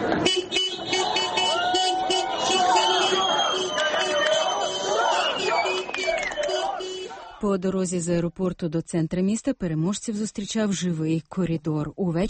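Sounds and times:
car horns honking: 0.0s - 7.4s
large crowd of football fans chanting and shouting: 0.0s - 7.5s
speech: 7.6s - 12.2s.

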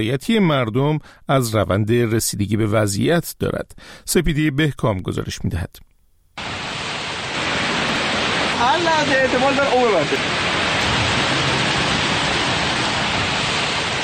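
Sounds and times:
speech: 0.0s - 6.6s, 8.6s - 10.5s
rushing floodwater after heavy rains in Iran: 6.4s - 14.0s.

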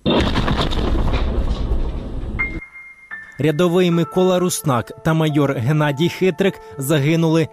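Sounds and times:
car bomb explosion of a van packed with TNT at a checkpoint: 0.0s - 2.6s
speech: 3.4s - 7.5s.

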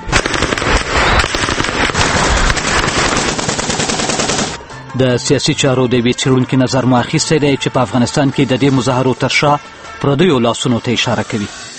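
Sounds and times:
gunfire at a street protest in Afghanistan over a Quran burning: 0.0s - 4.6s
speech: 5.0s - 11.7s.

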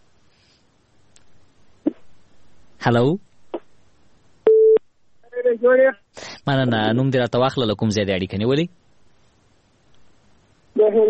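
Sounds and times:
speech: 2.8s - 3.3s, 5.6s - 8.8s, 10.8s - 11.0s
telephone tone after a caller's line dropped: 4.5s - 4.8s.

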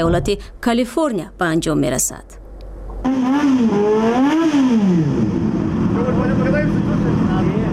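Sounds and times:
speech: 0.0s - 2.4s, 3.1s - 5.2s
motorcycle engine revving: 3.0s - 7.7s.

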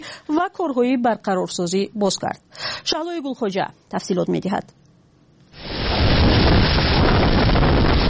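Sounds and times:
speech: 0.3s - 4.8s
heavy microphone distortion on a school surveillance camera: 5.6s - 8.0s
violent tornado winds roaring at night in southern Mississippi: 5.6s - 8.0s.

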